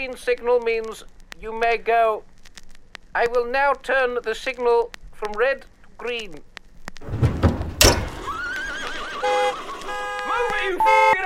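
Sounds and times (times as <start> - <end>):
speech: 0.0 - 2.3, 3.1 - 7.2, 10.6 - 11.2
horse hooves clip-clopping: 6.5 - 10.8
horse giving a loud quavering whinny: 7.9 - 9.8.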